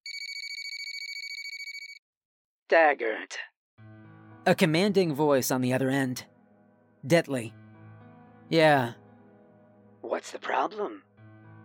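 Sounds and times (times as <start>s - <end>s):
telephone ringing with a high-pitched electronic trill: 0.1s - 2.0s
speech: 2.7s - 3.5s, 4.4s - 6.3s, 7.0s - 7.6s, 8.5s - 9.0s, 10.1s - 11.1s.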